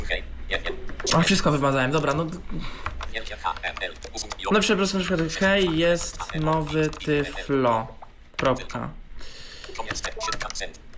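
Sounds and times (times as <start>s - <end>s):
speech: 0.1s - 10.8s
sharp mechanical keyboard clicks from typing: 0.8s - 1.4s, 2.1s - 7.4s, 9.6s - 10.9s.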